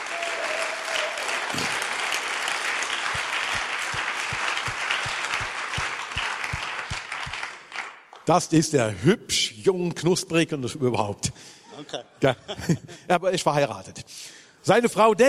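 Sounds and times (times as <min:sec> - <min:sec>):
loud sustained applause from a large audience: 0:00.0 - 0:08.1
steady rhythmic thumping: 0:03.0 - 0:07.4
speech: 0:08.3 - 0:15.2.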